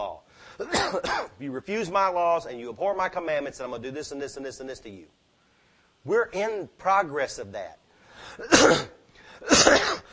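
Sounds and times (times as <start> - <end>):
person coughing after mowing grass: 0.6 - 1.4, 8.4 - 10.1
speech: 0.6 - 5.3, 6.0 - 10.0.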